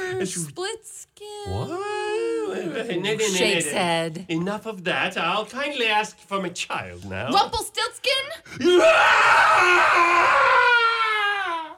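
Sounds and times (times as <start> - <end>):
speech: 0.2 - 0.8, 1.4 - 1.9, 2.6 - 10.8
man's wild scream of agony: 8.6 - 11.7.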